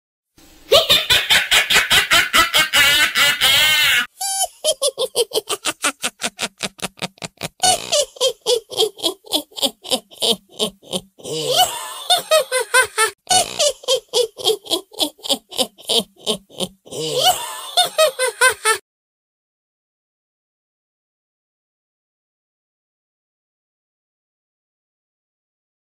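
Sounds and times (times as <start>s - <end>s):
evil witch laughing: 0.7s - 18.8s.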